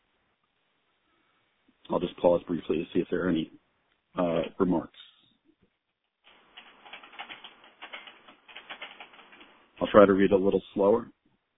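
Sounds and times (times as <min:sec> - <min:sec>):
speech: 0:01.9 - 0:03.6, 0:04.2 - 0:05.1, 0:09.9 - 0:11.2
typing on a keyboard during a conference call: 0:06.2 - 0:09.6.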